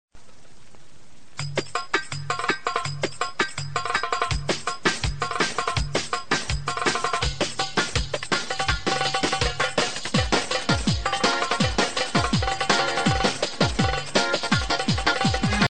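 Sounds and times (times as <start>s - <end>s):
Arabic festival ringtone melody: 1.4s - 15.7s.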